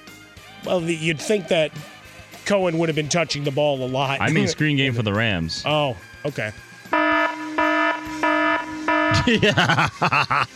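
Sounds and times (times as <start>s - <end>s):
speech: 0.6s - 6.7s, 9.2s - 10.5s
laughter: 1.0s - 1.9s, 9.1s - 10.5s
harsh electronic alarm buzzer: 6.9s - 9.3s.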